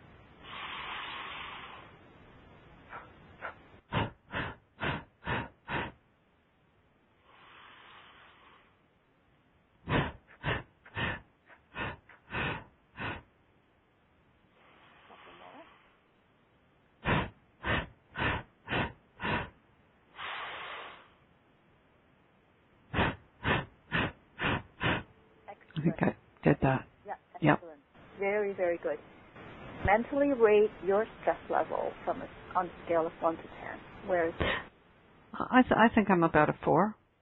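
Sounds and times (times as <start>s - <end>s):
forceful nasal breathing in a fire-breath exercise: 0.4s - 2.0s, 2.9s - 6.0s, 7.2s - 8.8s, 9.8s - 13.4s, 14.5s - 16.0s, 17.0s - 21.3s, 22.9s - 25.2s, 34.1s - 34.7s
speech: 25.8s - 29.2s, 29.8s - 34.7s, 35.4s - 37.0s.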